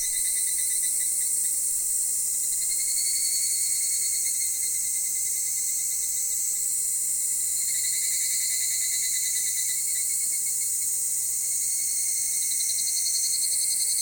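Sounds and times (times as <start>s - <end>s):
dense summer insect chorus: 0.0s - 13.9s.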